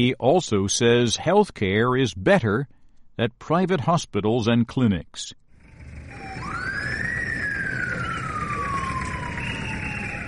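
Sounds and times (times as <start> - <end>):
speech: 0.0 - 5.4
steady rumble of traffic: 5.5 - 10.2
street noise: 5.5 - 10.2
ambulance siren wailing: 5.6 - 10.2.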